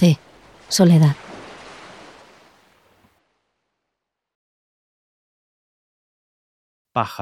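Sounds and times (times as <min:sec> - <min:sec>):
speech: 0:00.0 - 0:01.2, 0:07.0 - 0:07.1
sea wave washing onto the shore: 0:00.0 - 0:03.6.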